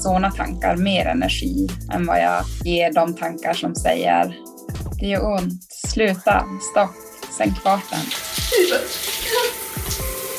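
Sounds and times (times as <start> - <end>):
speech: 0.0 - 9.5
shower water pouring over head: 7.5 - 10.3.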